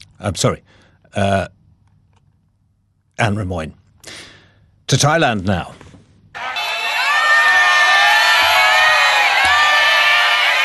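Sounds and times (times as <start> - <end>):
speech: 0.2 - 1.6, 3.2 - 4.2, 4.9 - 5.8
dense street crowd cheering and shouting: 6.4 - 10.6.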